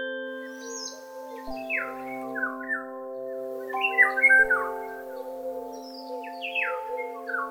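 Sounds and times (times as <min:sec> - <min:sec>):
soft sustained musical tones: 0:00.0 - 0:07.4
small bird chirping outside a window: 0:00.5 - 0:07.4.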